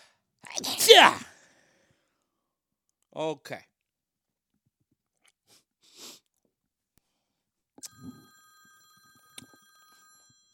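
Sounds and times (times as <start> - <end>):
sneeze: 0.5 - 1.3
speech: 0.6 - 1.3, 3.2 - 3.7.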